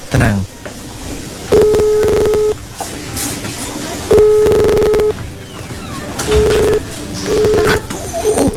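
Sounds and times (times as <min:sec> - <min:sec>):
busy noise: 0:00.0 - 0:08.5
telephone dialing tones: 0:01.5 - 0:02.6, 0:04.1 - 0:05.2, 0:06.3 - 0:07.8.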